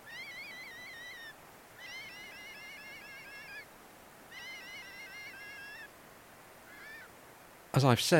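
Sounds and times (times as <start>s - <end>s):
faint steady hiss: 0.0s - 8.1s
five-week-old European honey buzzard chick calling at a nest in a Douglas fir: 0.1s - 3.6s, 4.3s - 5.9s.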